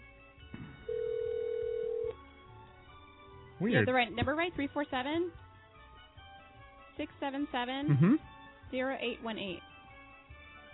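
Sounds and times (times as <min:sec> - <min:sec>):
electronic telephone tone during a call dialed through an internet calling service: 0:00.9 - 0:02.2
speech: 0:03.6 - 0:05.4, 0:07.0 - 0:09.7.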